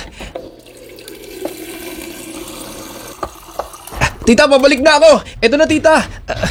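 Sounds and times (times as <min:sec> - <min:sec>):
water from tap filling a glass: 0:00.0 - 0:04.8
speech: 0:04.3 - 0:06.4.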